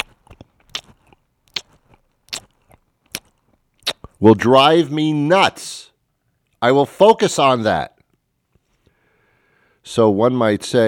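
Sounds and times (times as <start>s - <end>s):
person imitating chewing popcorn: 0.0s - 4.2s
speech: 4.2s - 5.9s, 6.6s - 7.9s, 9.8s - 10.8s.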